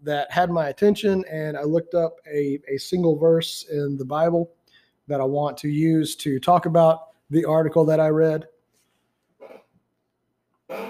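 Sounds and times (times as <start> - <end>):
speech: 0.0 - 8.5
person hiccuping: 9.4 - 9.7, 10.7 - 10.8.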